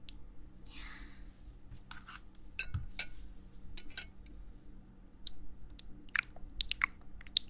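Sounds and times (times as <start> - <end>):
faint clink: 3.8 - 4.1
crunchy biting and chewing of food: 6.1 - 7.4.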